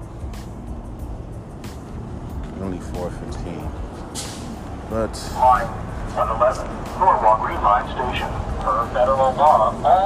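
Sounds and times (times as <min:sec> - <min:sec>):
city bus engine rumbling while arriving at stop: 0:00.0 - 0:10.0
speech: 0:02.6 - 0:04.3, 0:04.9 - 0:10.0
city bus air brakes hissing: 0:04.1 - 0:04.6.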